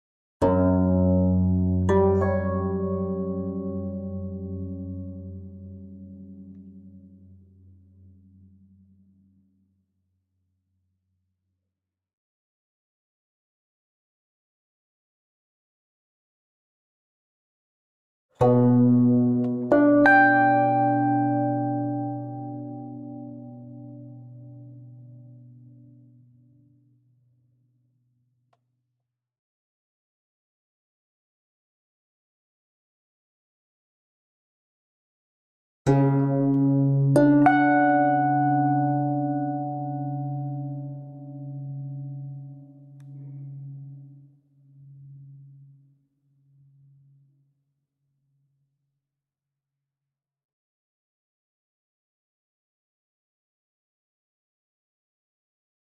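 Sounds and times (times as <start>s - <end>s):
guzheng playing triple musical intervals: 0.4s - 6.8s, 18.4s - 24.4s, 35.9s - 42.3s.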